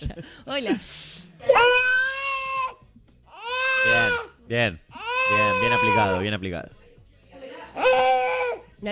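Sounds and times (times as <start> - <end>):
speech: 0.0 - 1.8, 3.8 - 6.8, 8.8 - 8.9
baby crying: 1.4 - 6.2, 7.8 - 8.7.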